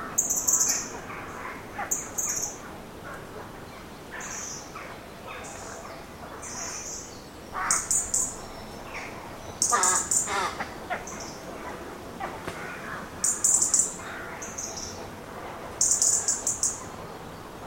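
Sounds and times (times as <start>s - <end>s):
steady low background hiss: 0.0s - 17.6s
many rooks calling in trees: 7.5s - 8.0s, 9.6s - 14.7s.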